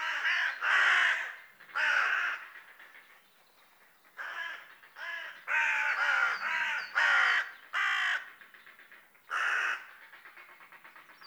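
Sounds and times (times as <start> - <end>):
Corvus corone carrion crow cawing: 0.0 - 2.5, 4.2 - 8.3, 9.3 - 9.9.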